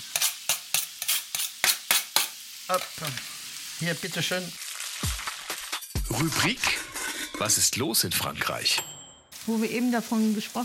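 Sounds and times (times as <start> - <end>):
onions and bacon fat sizzling as they melt in a pan: 0.0 - 6.0, 9.3 - 10.6
speech: 2.7 - 4.6, 6.1 - 8.9, 9.5 - 10.6.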